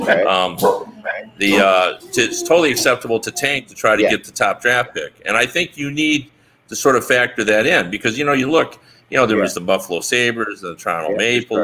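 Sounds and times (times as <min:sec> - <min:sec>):
speech: 0:00.0 - 0:11.6
dogs barking: 0:00.6 - 0:01.7.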